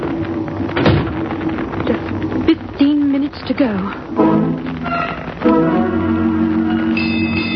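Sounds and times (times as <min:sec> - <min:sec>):
steady low hiss: 0:00.0 - 0:07.5
speech: 0:03.6 - 0:04.2
bells striking eight bells: 0:06.7 - 0:07.5.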